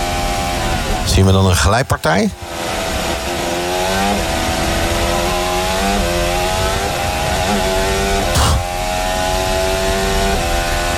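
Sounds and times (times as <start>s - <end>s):
Formula 1 car engine screaming at full throttle during qualifying: 0.0s - 10.9s
speech: 1.2s - 2.9s.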